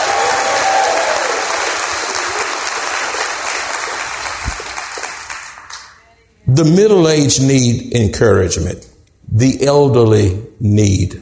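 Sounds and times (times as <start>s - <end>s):
congregation applauding: 0.0s - 6.1s
speech: 6.6s - 11.2s.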